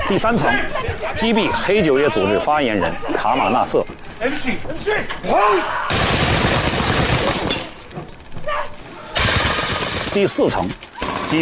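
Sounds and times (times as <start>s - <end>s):
people shouting: 0.0s - 7.4s, 8.4s - 10.0s, 10.8s - 11.4s
speech: 0.1s - 6.3s, 10.1s - 11.4s
gunfire from a commando raid on a militant stronghold in an apartment building: 5.9s - 7.8s, 9.1s - 11.4s.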